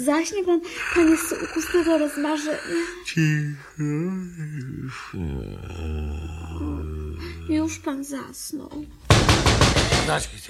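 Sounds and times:
speech: 0:00.0 - 0:06.8, 0:07.5 - 0:10.4
forester knocking on a door: 0:09.0 - 0:10.2.

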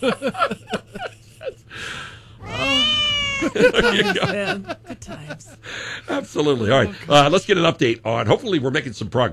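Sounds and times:
speech: 0:00.0 - 0:00.7, 0:03.6 - 0:09.3
laughter: 0:00.0 - 0:02.0, 0:02.6 - 0:07.3
cats meowing a melody: 0:02.4 - 0:03.7.

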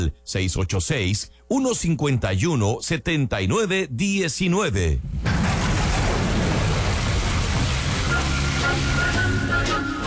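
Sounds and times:
speech: 0:00.0 - 0:05.6
deep rolling thunder: 0:05.0 - 0:08.7
steady loud hiss of rainfall: 0:05.3 - 0:10.0.

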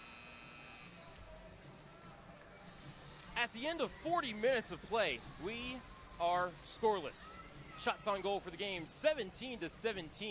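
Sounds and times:
hockey arena buzzer blaring for end of period: 0:00.0 - 0:01.0
noisy hockey arena crowd: 0:00.0 - 0:10.2
speech: 0:03.4 - 0:10.2.

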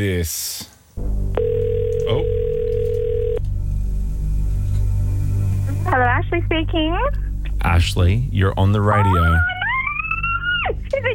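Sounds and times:
speech: 0:00.0 - 0:00.7, 0:02.1 - 0:02.4, 0:06.0 - 0:09.5, 0:10.7 - 0:11.1
outgoing telephone ringing tone while placing a call: 0:01.4 - 0:03.4
low hum: 0:01.4 - 0:11.1.

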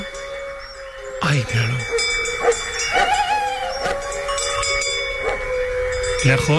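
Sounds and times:
wolf howling in the distance: 0:00.0 - 0:06.5
speech: 0:01.3 - 0:02.7, 0:06.2 - 0:06.5
faint brief barks: 0:02.4 - 0:04.0.

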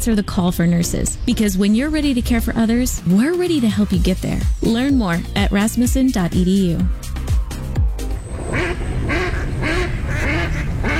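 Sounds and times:
speech: 0:00.0 - 0:07.1
ducks quacking: 0:08.4 - 0:10.9.

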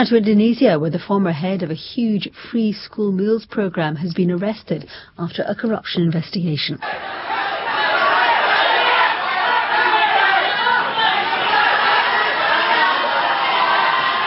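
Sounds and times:
speech: 0:00.0 - 0:07.5
large crowd chanting and shouting outside the Attorney General's office in Indonesia: 0:06.8 - 0:14.2.

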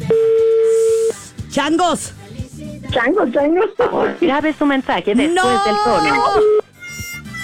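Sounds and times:
telephone keypad tones as a number is dialed: 0:00.1 - 0:01.1
speech: 0:01.5 - 0:02.2, 0:02.9 - 0:06.6.

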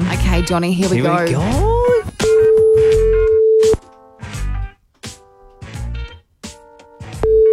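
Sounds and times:
loud busy rhythmic sounds: 0:00.0 - 0:07.5
speech: 0:00.3 - 0:02.0
phone outgoing call ringing tone: 0:02.2 - 0:03.8, 0:07.2 - 0:07.5.

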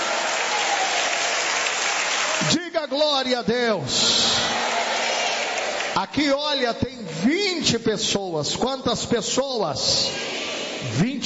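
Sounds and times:
church congregation applauding during a worship service: 0:00.0 - 0:03.2, 0:03.8 - 0:06.6
speech: 0:02.4 - 0:05.0, 0:06.0 - 0:11.2.

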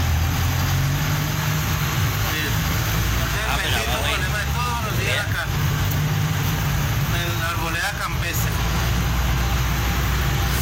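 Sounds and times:
idling cars and taxis in a traffic jam on a narrow street: 0:00.0 - 0:10.6.

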